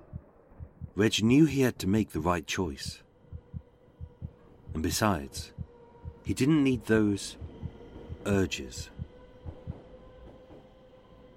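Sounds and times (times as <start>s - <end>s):
speech: 1.0s - 3.0s, 4.8s - 5.6s, 6.3s - 7.4s, 8.2s - 8.9s
underground tube train rumbling by with a steady low roar: 3.4s - 11.3s.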